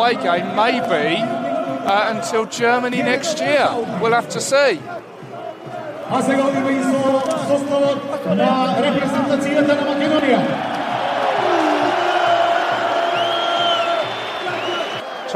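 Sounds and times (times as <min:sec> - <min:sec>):
speech: 0:00.0 - 0:05.1, 0:06.1 - 0:10.8
large football stadium crowd roaring and cheering: 0:00.0 - 0:15.3.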